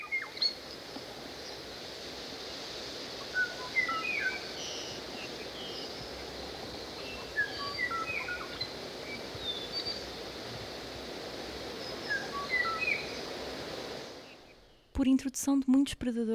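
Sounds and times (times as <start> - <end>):
constant hiss of noise: 0.0 - 16.0
Kauai ʻōʻō singing fluty whistled phrases: 3.3 - 5.0, 7.0 - 10.0, 12.0 - 13.2
speech: 15.0 - 16.3.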